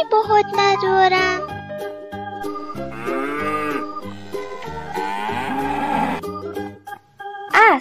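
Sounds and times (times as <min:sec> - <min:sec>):
speech: 0:00.0 - 0:03.6
cow mooing with deep drawn-out bellow: 0:02.5 - 0:06.3.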